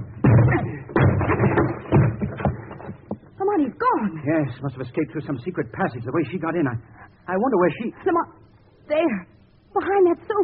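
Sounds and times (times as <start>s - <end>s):
door being broken down: 0.0s - 3.2s
speech: 4.3s - 10.4s.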